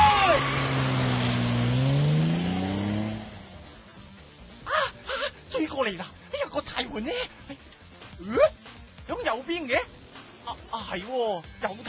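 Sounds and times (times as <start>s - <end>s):
car driving off fast: 0.0s - 3.8s
speech: 5.8s - 7.6s, 8.2s - 11.8s.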